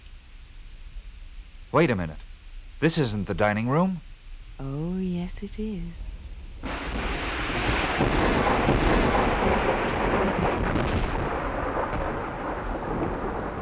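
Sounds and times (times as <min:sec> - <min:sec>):
heavy rain at an old mansion in Inverness: 0:00.1 - 0:13.6
speech: 0:01.7 - 0:06.7, 0:08.0 - 0:11.2
deep rolling thunder at an old mansion in Inverness: 0:04.5 - 0:13.6.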